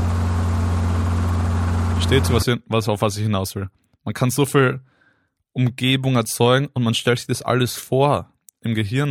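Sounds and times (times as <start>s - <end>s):
helicopter droning overhead: 0.0s - 2.4s
speech: 2.1s - 4.9s, 5.5s - 9.0s.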